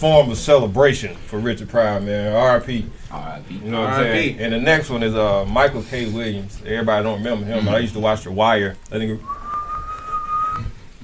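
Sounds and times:
speech: 0.0 - 9.4
faint low noise: 0.0 - 11.0
person whistling a high note: 9.2 - 10.8.

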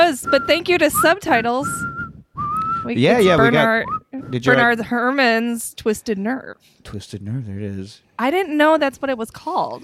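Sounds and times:
short whistled tune: 0.0 - 4.7
speech: 0.1 - 1.8, 2.8 - 9.8.

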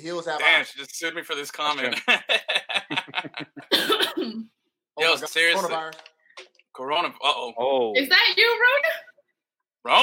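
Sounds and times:
speech: 0.0 - 3.5, 5.0 - 6.1, 6.8 - 9.1, 9.8 - 10.0
laughter: 1.8 - 4.2
person coughing in a fit: 3.7 - 4.5.

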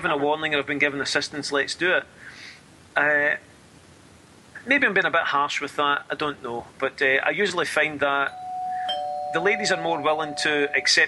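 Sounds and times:
speech: 0.0 - 2.4, 3.0 - 3.5, 4.6 - 8.4, 9.3 - 11.0
brighter higher chime: 8.3 - 10.9
doorbell ringing with a steady electronic tone: 8.3 - 11.0.

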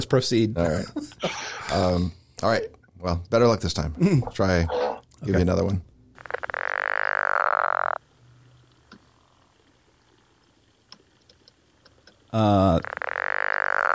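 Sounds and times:
speech: 0.0 - 5.9, 12.3 - 12.9
toad giving long harsh buzzy croaking calls: 6.2 - 8.0, 12.6 - 13.9
faint clicks: 8.5 - 12.2.

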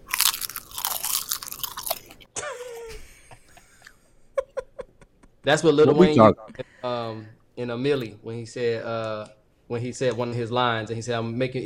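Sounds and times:
crunching and chewing crisp seaweed snacks: 0.0 - 2.3
speech: 5.4 - 11.6.

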